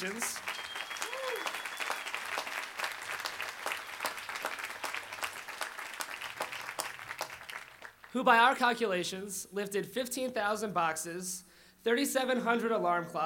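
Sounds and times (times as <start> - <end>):
speech: 0.0 - 0.5, 8.1 - 13.2
applause for orientation volunteers at a university move-in welcome: 0.0 - 8.1.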